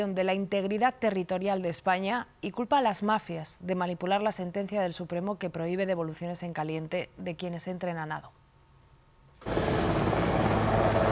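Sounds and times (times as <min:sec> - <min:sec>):
speech: 0:00.0 - 0:08.4
helicopter arriving with engine and rotor noise: 0:09.4 - 0:11.1.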